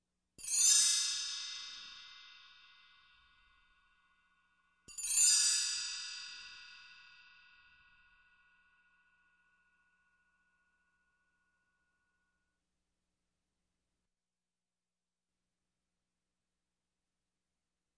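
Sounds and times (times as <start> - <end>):
chimes: 0.4 - 12.5.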